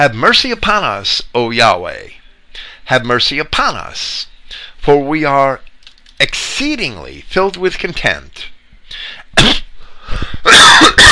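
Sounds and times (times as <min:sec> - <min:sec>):
speech: 0:00.0 - 0:11.1
person coughing harshly: 0:09.4 - 0:09.7, 0:10.4 - 0:11.1.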